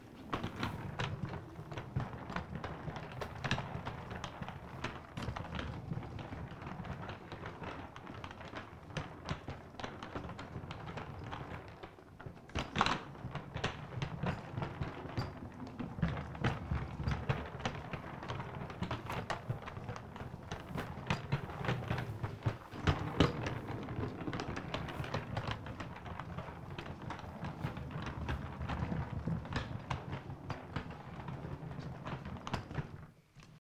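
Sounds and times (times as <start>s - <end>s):
luggage wheels rolling: 0.0s - 33.6s.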